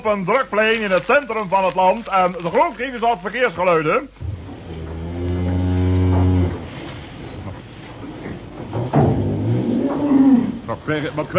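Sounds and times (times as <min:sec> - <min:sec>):
speech: 0:00.0 - 0:04.3, 0:10.7 - 0:11.3
cow mooing: 0:04.6 - 0:06.7, 0:09.2 - 0:10.7.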